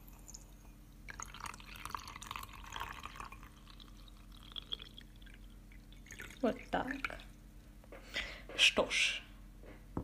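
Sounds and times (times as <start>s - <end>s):
warm water poured into teapot: 0.1s - 7.4s
speech: 6.4s - 7.3s, 8.6s - 9.2s.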